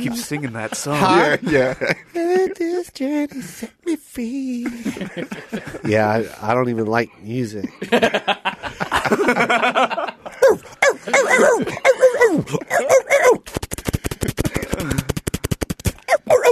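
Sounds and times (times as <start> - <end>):
laughter: 0.0 - 2.7, 4.6 - 6.1, 7.7 - 13.0, 14.2 - 15.2
speech: 0.0 - 13.6
dogs barking and yelping: 10.4 - 13.4, 16.0 - 16.5
sharp rhythmic clattering pulses: 13.4 - 16.5.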